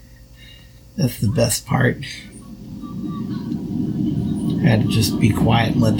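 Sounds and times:
speech: 1.0s - 2.3s, 4.6s - 5.9s
coffee maker pump drawing water from a 60-ounce reservoir: 1.3s - 5.9s.

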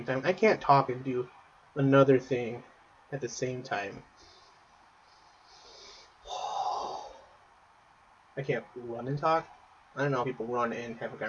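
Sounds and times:
speech: 0.0s - 4.2s, 8.4s - 11.2s
heavy loud breathing from a person: 5.2s - 7.2s.

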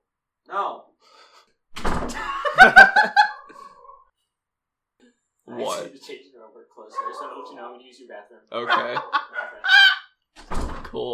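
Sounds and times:
door closing with a thud: 1.7s - 2.3s, 10.4s - 11.0s
laughter: 2.1s - 4.0s, 8.6s - 9.9s
speech: 6.1s - 9.2s.

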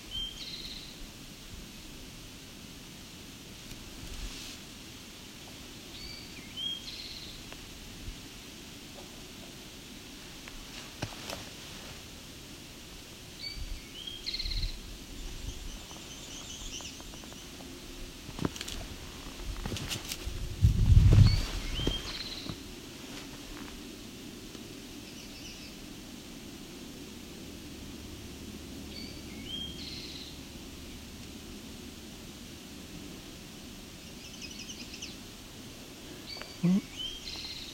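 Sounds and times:
American redstart song: 0.0s - 1.0s, 5.9s - 7.5s, 13.4s - 17.6s, 21.1s - 22.6s, 25.0s - 25.8s, 28.9s - 31.1s, 34.0s - 35.2s, 36.2s - 37.7s
steady outdoor hiss: 0.0s - 37.7s.

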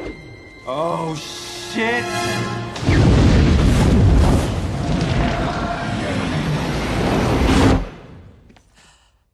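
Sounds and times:
speech: 0.7s - 3.0s
massive explosion of solid hydrogen fuel in fireplace: 2.8s - 8.3s.

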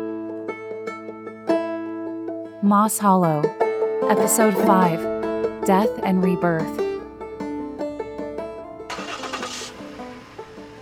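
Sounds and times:
speech: 2.6s - 6.9s
car engine cranking and starting: 6.9s - 10.8s
car driving away: 8.8s - 10.8s.

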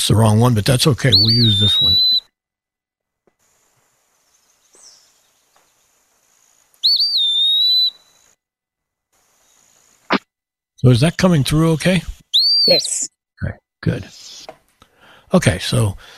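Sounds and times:
speech: 0.0s - 2.0s, 10.8s - 14.6s, 15.3s - 16.1s
Eastern Wood-Pewee song whistle: 1.1s - 2.3s, 6.8s - 8.4s, 12.2s - 13.1s.

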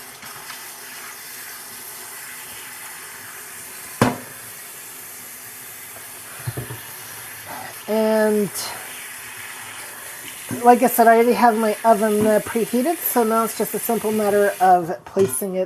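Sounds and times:
water running from a kitchen tap during washing up: 0.0s - 15.2s
sharp knock: 4.0s - 4.3s
speech: 7.9s - 8.8s, 10.6s - 15.6s.

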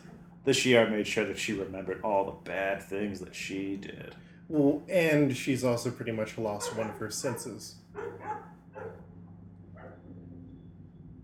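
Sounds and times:
steady low hum: 0.0s - 11.2s
speech: 0.4s - 8.5s
dog barking outside an apartment: 6.5s - 9.1s, 9.8s - 10.1s.

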